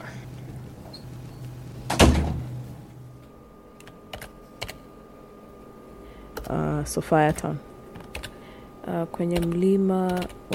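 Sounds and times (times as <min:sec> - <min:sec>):
low steady hum: 0:00.0 - 0:10.5
door thudding shut: 0:01.9 - 0:02.5
speech: 0:06.5 - 0:07.7, 0:08.9 - 0:10.5.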